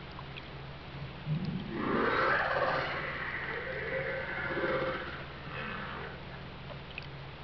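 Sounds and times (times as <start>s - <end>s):
steady background noise: 0.0s - 7.4s
whale calls: 1.3s - 6.4s.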